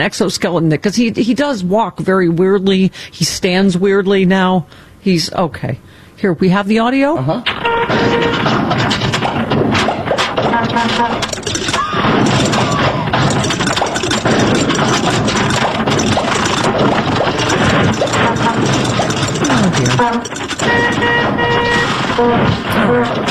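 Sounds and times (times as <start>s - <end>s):
speech: 0.0s - 9.0s, 10.8s - 12.6s, 19.7s - 23.2s
old broken-down car engine rumbling while pulling in: 5.8s - 23.2s
horn-like toots: 7.5s - 8.4s, 10.5s - 11.2s, 19.4s - 23.2s.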